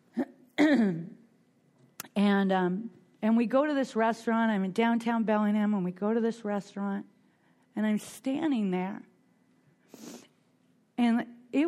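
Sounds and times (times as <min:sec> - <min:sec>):
person coughing: 0:00.1 - 0:01.2
speech: 0:00.7 - 0:01.1, 0:02.4 - 0:07.1, 0:07.8 - 0:09.1, 0:11.0 - 0:11.6.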